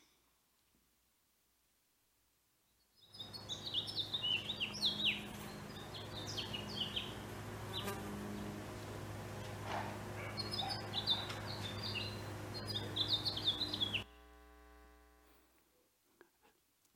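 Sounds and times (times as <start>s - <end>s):
house finch singing outdoors: 3.0s - 8.0s, 10.2s - 14.1s
steady low buzzing hum: 3.1s - 15.6s.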